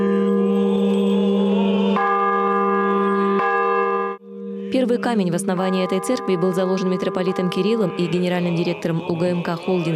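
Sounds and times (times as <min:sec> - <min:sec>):
newly consecrated church bells rung on a feast day: 0:00.0 - 0:09.9
speech: 0:04.7 - 0:09.9.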